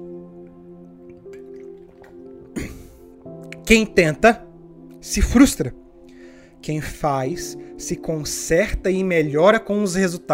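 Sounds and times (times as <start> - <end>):
wet sip and gulp of water: 1.0 - 3.2
speech: 3.7 - 5.8, 6.6 - 10.3.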